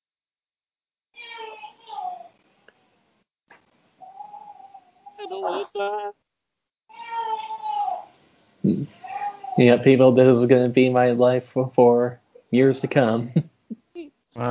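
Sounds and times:
cat meowing: 1.2 - 2.3, 6.9 - 8.1, 9.0 - 9.6
speech: 5.3 - 6.2, 9.6 - 13.5, 14.4 - 14.5.

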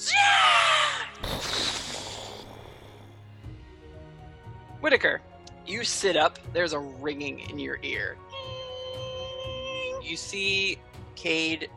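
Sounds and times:
voice imitating a bird screaming during a tabletop role-playing game: 0.0 - 3.1
burst of rough broadband noise: 1.2 - 3.4
speech: 4.8 - 8.3, 10.1 - 11.7.

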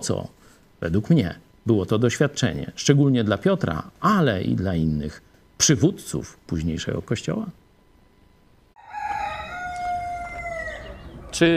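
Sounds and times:
speech: 0.0 - 7.6, 11.4 - 11.5
rooster crowing: 8.8 - 11.5.

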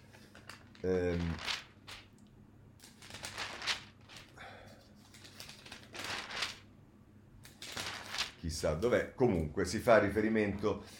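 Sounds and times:
newspaper pages being leafed through: 0.4 - 2.1, 2.8 - 4.4, 5.0 - 6.7, 7.5 - 8.4
speech: 0.8 - 1.5, 8.5 - 10.9.

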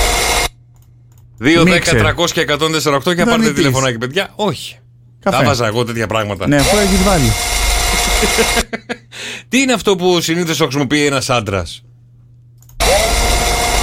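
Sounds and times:
speech: 1.4 - 7.6, 8.2 - 11.9
electric shaver buzzing: 6.6 - 8.8, 12.8 - 13.8
laughter: 7.8 - 9.3.

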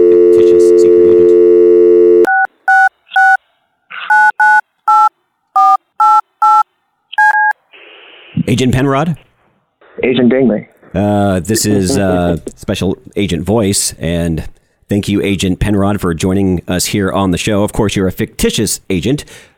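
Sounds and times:
touch-tone telephone dialing beeps: 0.2 - 3.4, 4.1 - 6.6, 7.2 - 7.5
speech: 8.5 - 9.3, 10.0 - 19.5.

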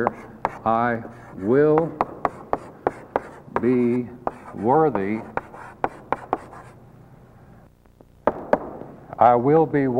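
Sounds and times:
speech: 0.0 - 2.1, 3.6 - 5.4, 9.2 - 9.9
chalk or marker strokes tapping and scraping across a board: 0.0 - 6.8.

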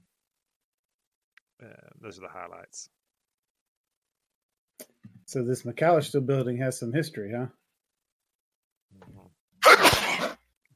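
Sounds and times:
speech: 1.6 - 3.0, 5.3 - 7.6
person sneezing: 9.6 - 10.4.

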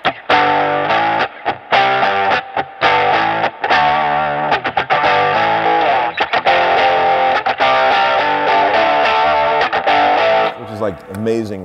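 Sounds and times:
lo-fi heavily distorted electric guitar playing a choppy riff with mids boosted: 0.0 - 11.2
speech: 11.0 - 11.6.

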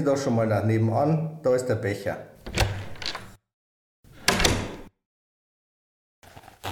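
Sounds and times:
speech: 0.0 - 2.7
stuck door being rattled at a doctor's practice: 2.4 - 3.4, 4.2 - 4.9.

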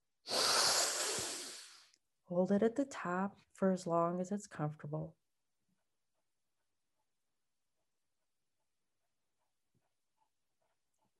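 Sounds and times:
deep quick breath drawn in during a relaxation breathing exercise: 0.3 - 1.9
speech: 2.3 - 5.2.

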